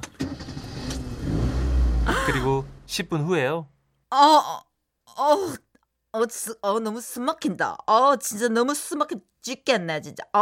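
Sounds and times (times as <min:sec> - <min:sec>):
bus engine starting and driving off: 0:00.3 - 0:03.0
speech: 0:02.3 - 0:10.3.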